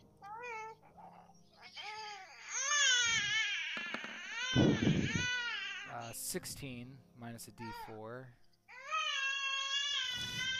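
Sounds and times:
newborn baby crying: 0:00.2 - 0:06.1, 0:08.7 - 0:10.5
speech: 0:04.6 - 0:05.4, 0:06.0 - 0:08.4.

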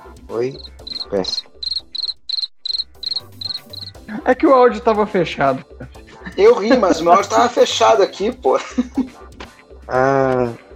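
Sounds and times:
speech: 0:00.3 - 0:01.5, 0:04.2 - 0:09.2, 0:09.9 - 0:10.6
crickets chirping in short trilling bursts: 0:00.5 - 0:04.0
laughter: 0:05.6 - 0:09.1.

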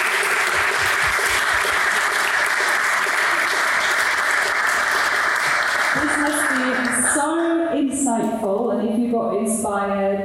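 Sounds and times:
audience applause for panel speakers: 0:00.0 - 0:07.5
speech: 0:08.1 - 0:10.2.

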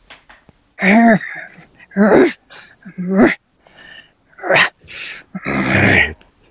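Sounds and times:
speech: 0:00.8 - 0:02.4, 0:03.0 - 0:03.4
voice imitating effort grunts of a hefty creature lifting something: 0:00.8 - 0:03.4, 0:04.4 - 0:06.2.

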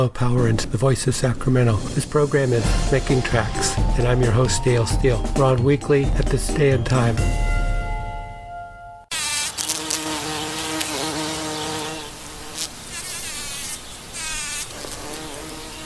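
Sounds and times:
speech: 0:00.0 - 0:07.5
bumblebee buzzing: 0:09.1 - 0:15.8.

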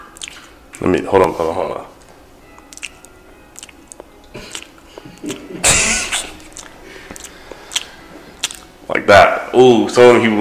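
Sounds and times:
wet open-mouth chewing with loud smacking: 0:00.0 - 0:00.8, 0:02.0 - 0:08.8
speech: 0:00.8 - 0:01.9, 0:09.6 - 0:10.3.

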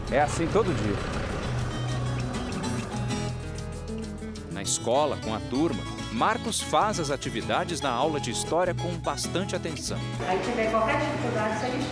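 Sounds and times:
car engine droning while carrying students to school: 0:00.0 - 0:03.7
road rumble: 0:00.0 - 0:04.2
speech: 0:00.1 - 0:01.2, 0:04.6 - 0:11.8.

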